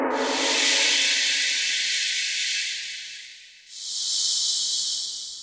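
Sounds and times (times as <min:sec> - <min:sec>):
noise from Korg T3: 0:00.1 - 0:03.4.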